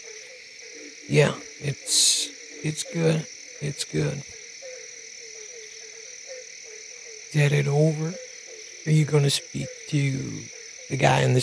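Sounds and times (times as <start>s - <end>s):
dense chorus of frogs croaking and trilling: 0.0s - 11.4s
speech: 1.1s - 4.4s, 7.3s - 11.4s.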